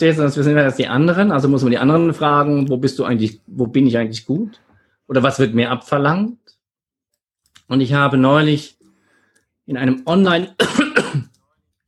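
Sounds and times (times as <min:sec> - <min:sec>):
speech: 0:00.0 - 0:06.5, 0:07.7 - 0:08.8, 0:09.7 - 0:10.8
person coughing: 0:10.6 - 0:11.4.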